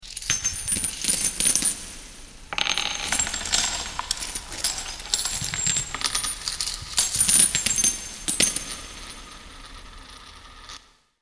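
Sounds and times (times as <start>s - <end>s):
pirate treasure chest money fantasy sound effect: 0.3s - 2.0s, 2.6s - 9.4s.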